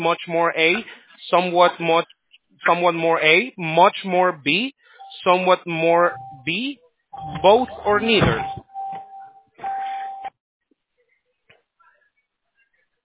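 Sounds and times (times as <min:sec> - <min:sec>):
speech: 0:00.0 - 0:08.6
phone ringing with electronic tone bursts: 0:06.0 - 0:06.6, 0:07.2 - 0:10.3.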